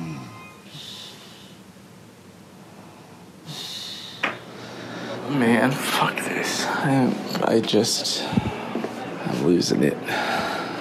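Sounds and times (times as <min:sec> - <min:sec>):
mother snoring: 0:00.0 - 0:00.6
low steady hum: 0:00.0 - 0:10.7
speech: 0:05.3 - 0:08.5, 0:09.3 - 0:10.5.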